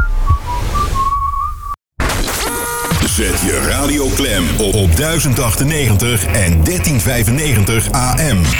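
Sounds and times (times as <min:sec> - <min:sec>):
short clear upward-gliding whistle: 0:00.0 - 0:01.8
loud noisy burst: 0:02.1 - 0:08.5
speech: 0:03.2 - 0:08.5.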